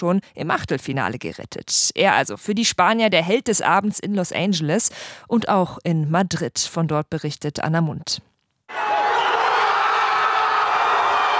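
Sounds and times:
speech: 0:00.0 - 0:08.3
large crowd of football fans cheering in an open city square: 0:08.7 - 0:11.3.

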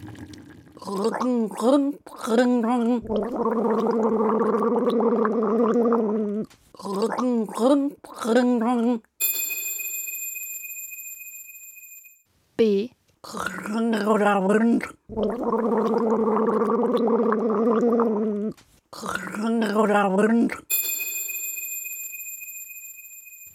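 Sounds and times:
person gargling water: 0:00.0 - 0:08.6, 0:13.2 - 0:20.7
speech: 0:00.8 - 0:09.1, 0:12.6 - 0:17.6, 0:18.5 - 0:20.7
bright bell ringing: 0:09.2 - 0:12.2, 0:20.7 - 0:23.5.

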